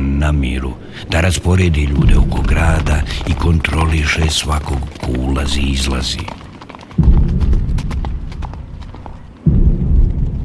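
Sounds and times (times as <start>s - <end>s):
speech: 0.3s - 6.4s
many horses galloping: 1.8s - 9.5s.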